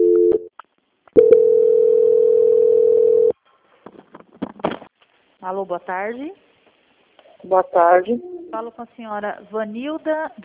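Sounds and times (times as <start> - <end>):
telephone call transfer tone: 1.2 - 3.3
speech: 5.5 - 6.4, 7.4 - 10.4.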